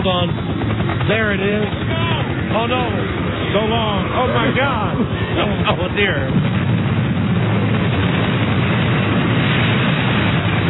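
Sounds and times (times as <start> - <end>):
speech: 0.0 - 0.5, 1.1 - 6.6
helicopter roar with a heavy low rumble: 0.0 - 10.6.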